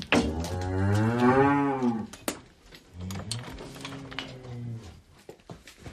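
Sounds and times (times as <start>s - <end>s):
cattle mooing: 0.2s - 2.1s, 3.0s - 5.0s.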